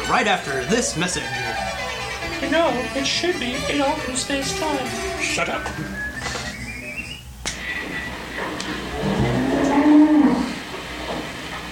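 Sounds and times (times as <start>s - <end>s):
faint noise: 0.0s - 11.7s
speech: 0.1s - 6.1s
cattle mooing on a cattle drive: 8.8s - 10.7s.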